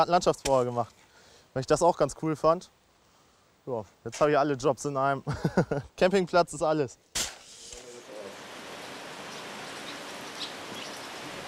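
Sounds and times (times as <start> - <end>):
speech: 0.0 - 2.8, 3.6 - 7.1
steady rain: 7.7 - 11.4.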